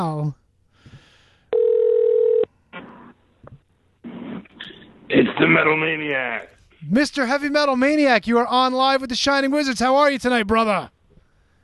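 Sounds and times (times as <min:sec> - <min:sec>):
speech: 0:00.0 - 0:00.4, 0:05.1 - 0:11.0
steady electronic telephone ring tone: 0:01.5 - 0:02.5.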